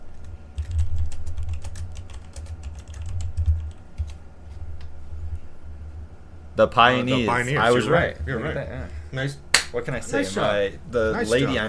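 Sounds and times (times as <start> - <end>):
low hum: 0.0 - 11.6
rapid uneven computer keyboard typing: 0.2 - 4.2
speech: 6.6 - 11.6.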